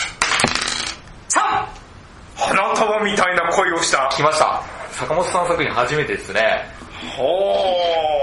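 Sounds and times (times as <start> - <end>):
dice being rolled: 0.2 - 1.0
speech: 3.0 - 8.1.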